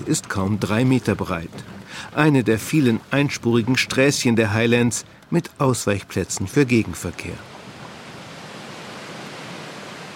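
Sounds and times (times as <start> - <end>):
speech: 0.0 - 7.6
waterfall on the south shore of a Highland loch: 7.0 - 10.1.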